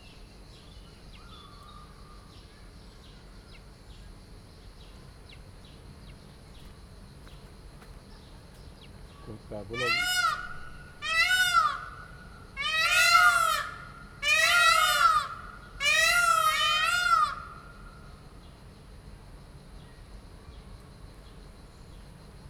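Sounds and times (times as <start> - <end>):
peacock calling: 9.1 - 18.2.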